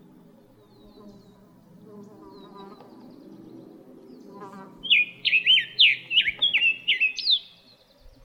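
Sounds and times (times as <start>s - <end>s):
low rumbling background noise: 0.0s - 8.2s
Summer tanager singing slurred whistled phrases in Arizona: 4.8s - 7.5s.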